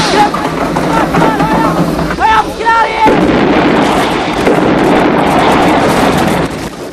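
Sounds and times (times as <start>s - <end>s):
people shouting: 0.0s - 3.3s
bomber plane exploding: 0.0s - 6.9s
bomber plane fireball roaring: 0.0s - 6.9s.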